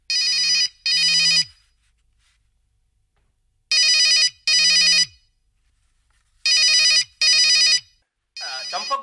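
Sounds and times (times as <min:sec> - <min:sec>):
telephone ringing in shrill electronic trills: 0:00.1 - 0:01.6, 0:03.7 - 0:05.2, 0:06.5 - 0:09.0.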